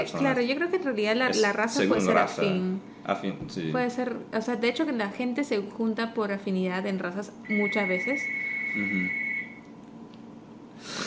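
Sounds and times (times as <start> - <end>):
speech: 0.0 - 9.2
telephone ringing with a short electronic tone: 7.5 - 9.6.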